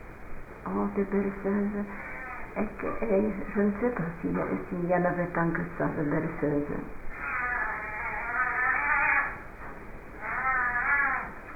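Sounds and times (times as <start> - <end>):
speech: 0.6 - 7.0
cat meowing: 2.1 - 2.6, 7.1 - 9.4, 10.2 - 11.4.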